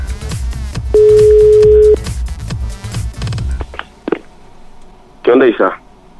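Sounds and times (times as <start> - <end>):
telephone busy tone after the other side hangs up on a phone call: 1.0 - 2.0
speech: 5.5 - 5.8.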